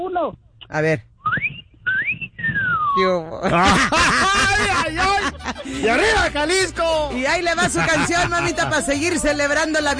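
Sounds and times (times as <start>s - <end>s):
speech: 0.0s - 1.5s, 3.0s - 9.9s
person whistling sliding notes: 1.2s - 3.0s
laughter: 3.3s - 9.3s.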